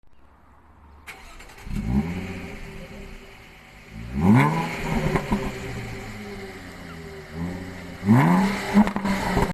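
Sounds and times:
Jaguar car exhaust: 0:01.7 - 0:09.5.

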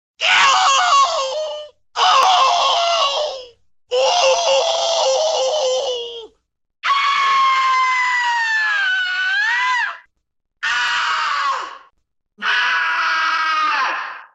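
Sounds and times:
animated cartoon scream: 0:00.2 - 0:14.3.

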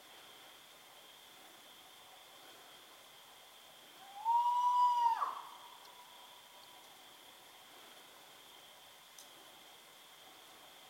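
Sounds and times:
Spot-bellied eagle-owl sustained clear wailing note: 0:04.0 - 0:05.8.

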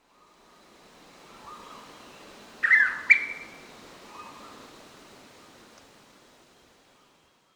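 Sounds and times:
blue pitta calling: 0:01.3 - 0:04.7.

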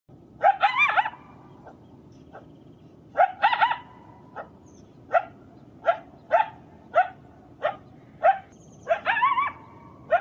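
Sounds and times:
coyote howling: 0:00.4 - 0:02.5, 0:03.2 - 0:10.2.

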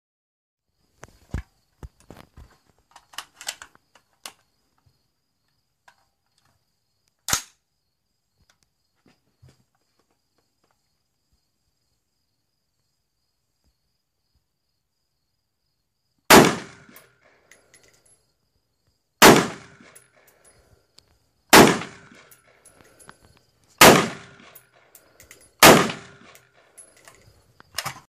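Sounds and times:
rifle gunshots: 0:16.3 - 0:17.0, 0:19.2 - 0:20.0, 0:21.5 - 0:22.3, 0:23.8 - 0:24.6, 0:25.6 - 0:26.4.

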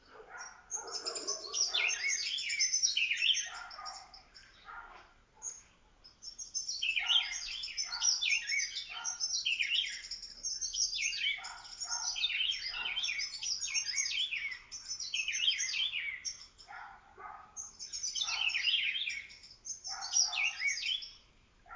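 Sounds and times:
Buff-throated saltator: 0:00.0 - 0:21.7.

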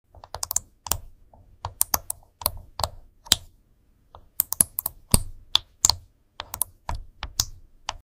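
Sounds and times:
ASMR keyboard typing: 0:00.1 - 0:03.5, 0:04.2 - 0:08.0.

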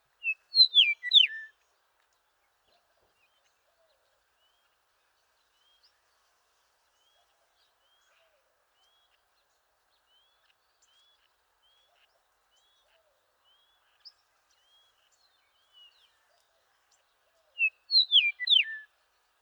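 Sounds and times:
Eastern meadowlark: 0:00.2 - 0:01.5, 0:17.6 - 0:18.9.

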